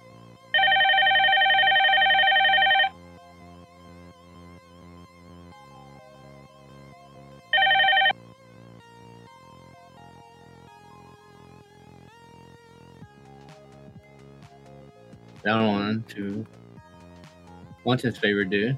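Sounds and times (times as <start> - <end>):
telephone bell ringing: 0.5 - 3.0, 7.5 - 8.2
speech: 15.4 - 16.6, 17.8 - 18.7.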